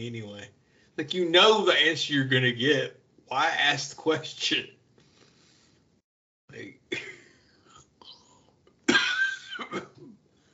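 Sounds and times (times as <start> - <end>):
speech: 0.0 - 4.8, 6.5 - 7.1
person coughing: 6.6 - 7.4, 8.9 - 10.2.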